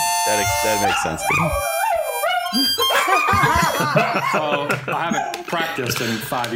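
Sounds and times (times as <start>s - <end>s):
speech: 0.3s - 1.8s, 2.5s - 6.5s
dog howling loudly: 0.3s - 4.2s
laughter: 2.6s - 6.5s.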